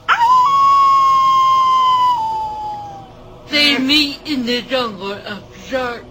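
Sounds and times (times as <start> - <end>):
werewolf howl: 0.0 - 4.0
speech: 4.4 - 6.0.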